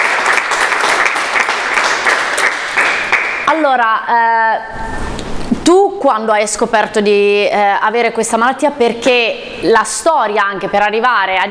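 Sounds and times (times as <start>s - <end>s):
sizable audience applauding: 0.0s - 3.5s
speech: 3.6s - 5.0s, 5.7s - 11.4s.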